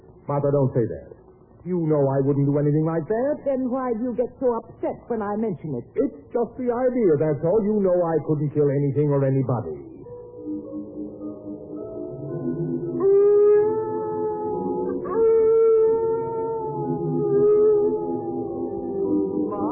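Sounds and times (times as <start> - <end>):
speech: 0.3 - 9.9
big dog howling: 11.8 - 19.7.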